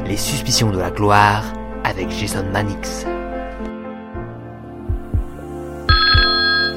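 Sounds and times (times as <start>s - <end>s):
speech: 0.1s - 3.2s
heartbeat-like thuds: 4.8s - 6.3s
telephone ringing: 5.9s - 6.7s.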